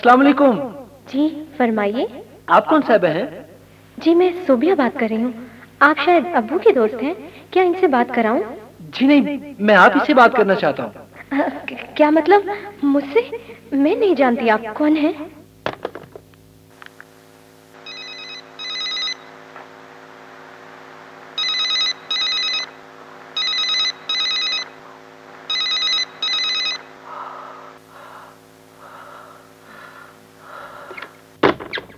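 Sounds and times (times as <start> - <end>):
speech: 0.0 - 3.4, 4.0 - 15.4
low steady hum: 0.0 - 31.9
telephone ringing in a classic double-ring pattern: 17.8 - 19.4, 21.4 - 24.8, 25.4 - 27.0.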